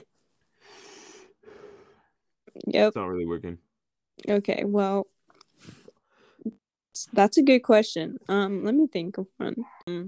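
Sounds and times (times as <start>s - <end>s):
person breathing heavily: 0.5s - 2.1s
speech: 2.6s - 5.8s, 6.4s - 10.0s.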